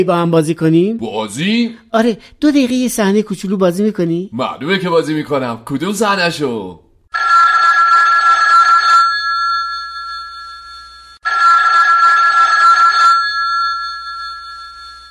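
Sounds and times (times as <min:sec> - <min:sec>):
speech: 0:00.0 - 0:07.4
telephone ringing with an electronic trill: 0:07.1 - 0:15.0.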